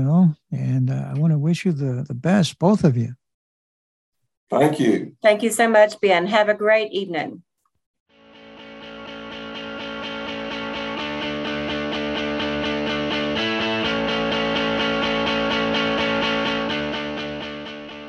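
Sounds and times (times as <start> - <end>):
speech: 0.0 - 3.2, 4.5 - 7.5
instrumental podcast theme with distorted effects-heavy guitar: 8.2 - 18.0.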